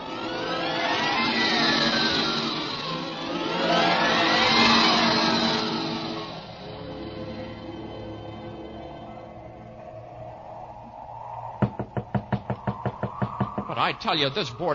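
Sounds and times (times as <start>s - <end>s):
droning orchestral music: 0.0s - 11.4s, 13.6s - 14.7s
knocking on the door of a boarding house: 11.6s - 13.8s
speech: 13.8s - 14.7s.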